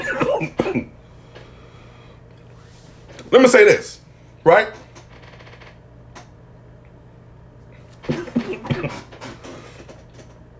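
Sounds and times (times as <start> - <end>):
man clearing his throat: 0.0 - 1.0, 8.0 - 9.2
man coughing: 0.0 - 1.0, 8.0 - 9.2
speech: 3.4 - 4.8.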